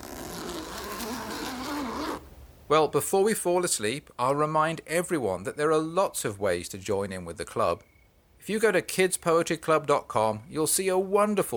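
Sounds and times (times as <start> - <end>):
tent zipper being zipped up: 0.0 - 2.2
speech: 2.7 - 11.5.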